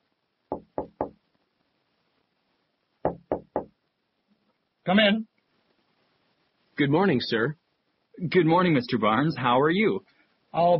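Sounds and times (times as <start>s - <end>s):
firm knocking on an office door: 0.5s - 1.2s, 3.0s - 3.8s
speech: 4.8s - 5.3s, 6.8s - 7.6s, 8.2s - 10.7s.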